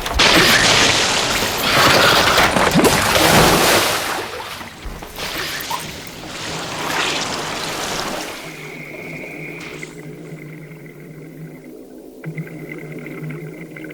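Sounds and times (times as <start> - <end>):
rushing splash of bubbles from divers underwater: 0.2 - 9.2.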